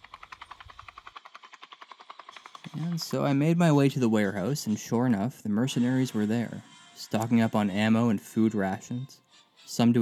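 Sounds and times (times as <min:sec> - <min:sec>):
helicopter rotor chopping: 0:00.0 - 0:06.6
speech: 0:02.8 - 0:10.0.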